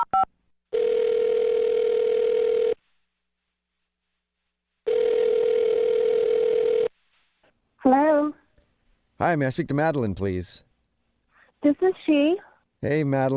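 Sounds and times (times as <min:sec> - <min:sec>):
phone ringing tone: 0:00.2 - 0:02.8, 0:04.9 - 0:06.9
speech: 0:09.2 - 0:10.7, 0:12.1 - 0:13.3.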